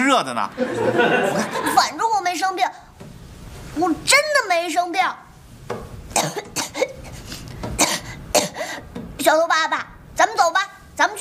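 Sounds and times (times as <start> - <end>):
speech: 0.1 - 2.9, 3.8 - 6.6, 9.2 - 11.1
laughter: 0.5 - 1.9
harsh coughing from an unwell person: 6.1 - 7.2, 7.8 - 8.8.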